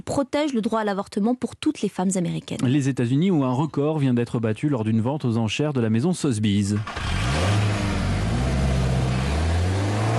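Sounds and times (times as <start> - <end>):
speech: 0.1 - 7.2
car engine revving: 6.8 - 10.1.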